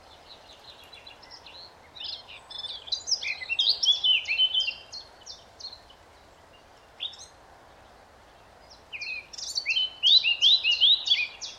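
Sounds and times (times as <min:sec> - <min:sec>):
Eurasian blackcap Sylvia atricapilla warbling song with fluty whistles: 0:00.0 - 0:06.0, 0:08.7 - 0:11.5.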